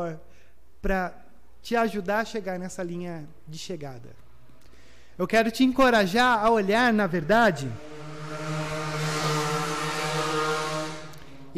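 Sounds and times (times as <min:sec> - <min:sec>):
speech: 0:00.0 - 0:04.2, 0:05.2 - 0:08.5
vehicle with loud rough exhaust passing by: 0:04.2 - 0:05.2, 0:06.0 - 0:11.5.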